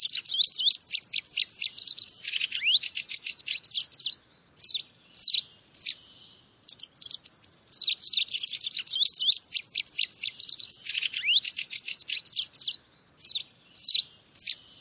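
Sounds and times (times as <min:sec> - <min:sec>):
birds twittering: 0:00.0 - 0:14.7.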